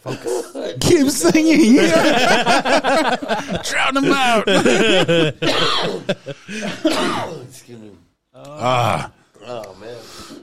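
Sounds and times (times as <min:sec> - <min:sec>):
laughter: 0:00.0 - 0:06.9
speech: 0:00.0 - 0:10.3
person coughing harshly: 0:05.4 - 0:07.4
person groaning: 0:08.4 - 0:09.2.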